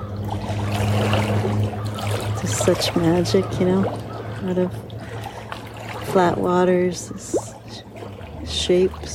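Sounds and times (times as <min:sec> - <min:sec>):
boat wake water churning and lapping: 0:00.0 - 0:09.1
low droning boat engine hum: 0:00.0 - 0:09.1
speech: 0:02.6 - 0:04.9, 0:06.1 - 0:07.5, 0:08.6 - 0:09.1.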